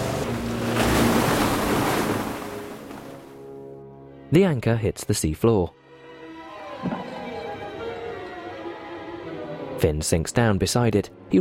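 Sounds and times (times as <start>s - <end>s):
boat surging forward through water with spray and churning waves: 0.0s - 3.5s
speech: 4.3s - 5.8s, 9.8s - 11.3s.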